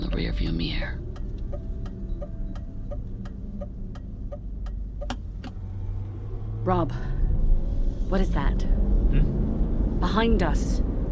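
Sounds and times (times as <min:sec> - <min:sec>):
regular ticking: 0:00.0 - 0:05.6
car slowing to a crawl before a corner: 0:00.0 - 0:11.1
speech: 0:00.2 - 0:01.2, 0:06.6 - 0:07.1, 0:08.1 - 0:09.4, 0:10.0 - 0:10.9.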